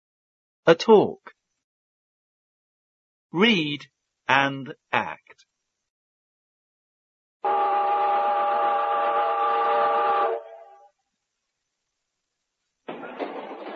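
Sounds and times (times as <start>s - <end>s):
speech: 0.7s - 1.4s, 3.3s - 5.4s
train whistle: 7.4s - 11.0s.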